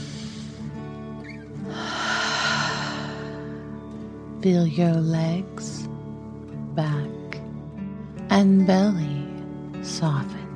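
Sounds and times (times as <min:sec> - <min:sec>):
deep slow dragon breath breathing exercise: 0:01.6 - 0:03.9
sustained musical drone: 0:01.6 - 0:05.4
speech: 0:04.4 - 0:06.0, 0:06.8 - 0:07.2, 0:08.3 - 0:09.1, 0:09.8 - 0:10.4.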